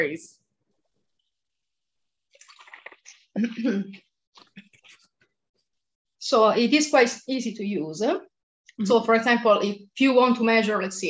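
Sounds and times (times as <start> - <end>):
speech: 0.0 - 0.4, 3.4 - 4.7, 6.2 - 11.0
person sipping water with soft slurping: 2.3 - 3.4.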